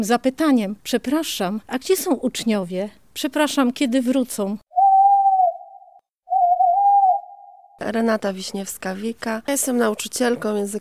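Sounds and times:
speech: 0.0 - 4.6, 7.8 - 10.7
owl hooting: 4.7 - 7.8.

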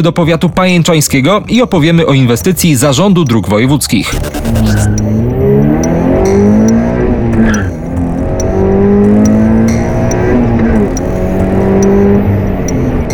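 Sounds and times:
speech: 0.0 - 5.2
Toyota GT86 and Subaru BRZ racing cars roaring past on a track: 4.7 - 13.1.

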